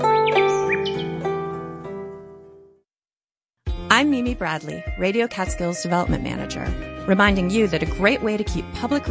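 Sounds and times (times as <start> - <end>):
songbird chirps and trills: 0.1 - 1.3
speech: 4.1 - 9.0.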